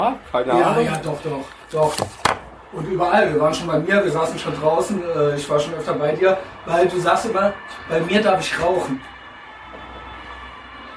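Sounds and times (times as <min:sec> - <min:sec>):
speech: 0:00.1 - 0:09.2
emergency sirens heard from outdoors: 0:02.5 - 0:10.9.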